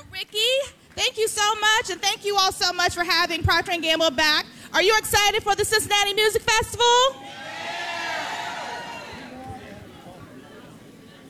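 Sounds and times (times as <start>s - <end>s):
speech: 0.2s - 7.4s
large morning crowd at a music festival cheering and chattering: 7.1s - 11.2s.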